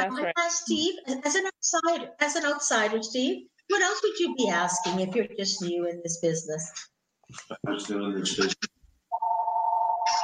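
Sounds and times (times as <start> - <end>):
speech: 0.0 - 8.8
steady electronic phone tone: 9.1 - 10.2.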